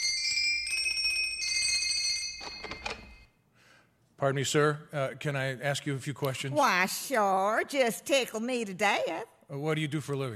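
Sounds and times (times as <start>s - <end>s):
doorbell ringing: 0.0s - 3.4s
speech: 4.2s - 10.3s.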